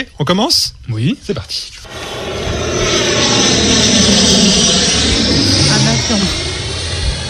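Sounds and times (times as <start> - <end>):
speech: 0.0 - 2.0, 2.8 - 5.0, 6.1 - 6.4
airplane engine roaring: 1.8 - 7.2.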